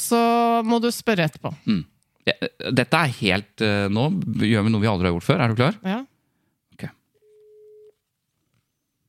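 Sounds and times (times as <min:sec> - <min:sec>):
speech: 0:00.1 - 0:06.1
telephone ringback tone: 0:07.2 - 0:07.9.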